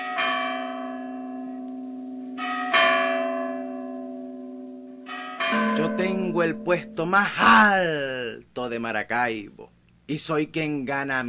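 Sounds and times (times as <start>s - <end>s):
church bells ringing with long humming resonance: 0.0s - 7.7s
speech: 5.6s - 11.2s.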